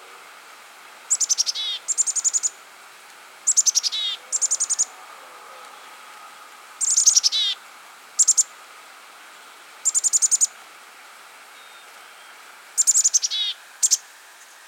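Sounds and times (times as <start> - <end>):
Black-capped chickadee Poecile atricapillus calling: 1.1 - 2.6, 3.4 - 6.2, 6.8 - 7.6, 8.2 - 8.6, 9.8 - 10.6, 11.5 - 14.1.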